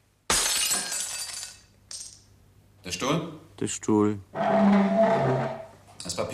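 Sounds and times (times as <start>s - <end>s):
glass shattering sound effect: 0.3s - 2.2s
speech: 2.8s - 6.3s.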